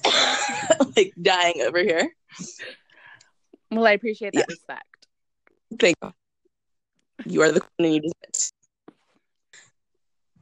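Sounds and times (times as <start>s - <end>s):
cough: 0.0s - 1.2s
speech: 0.9s - 2.8s, 3.7s - 4.9s, 5.7s - 6.2s, 7.2s - 8.6s
faint breathy sound: 2.7s - 3.4s.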